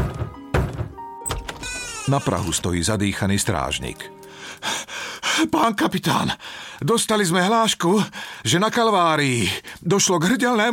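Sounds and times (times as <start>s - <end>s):
forceful knocking on a door: 0.0s - 1.0s
speech: 2.1s - 4.8s, 5.4s - 10.7s.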